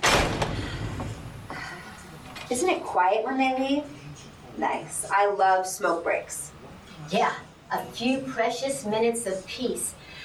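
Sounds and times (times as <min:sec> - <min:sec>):
door banging shut: 0:00.0 - 0:01.4
speech: 0:02.5 - 0:04.0, 0:04.6 - 0:09.9.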